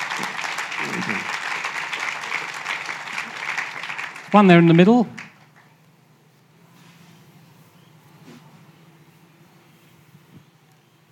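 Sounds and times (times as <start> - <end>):
crowd applauding: 0.0 - 5.8
speech: 0.2 - 1.4, 4.3 - 5.2.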